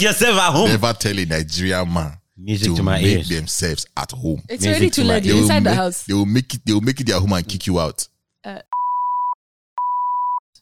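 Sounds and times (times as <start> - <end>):
speech: 0.0 - 8.8
censor bleep tone: 8.7 - 10.4.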